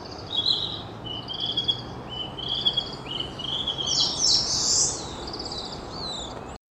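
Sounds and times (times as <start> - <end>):
Narcissus flycatcher singing whistled phrases in Sendai: 0.1 - 6.3.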